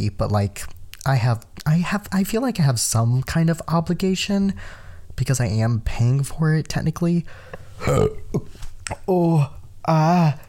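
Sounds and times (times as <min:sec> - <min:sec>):
speech: 0:00.0 - 0:10.4
person burping from acid reflux: 0:07.8 - 0:10.4.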